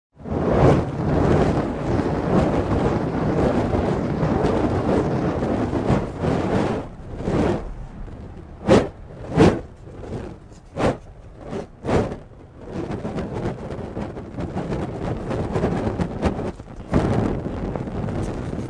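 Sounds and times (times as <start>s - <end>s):
torches waving: 0.2s - 18.6s.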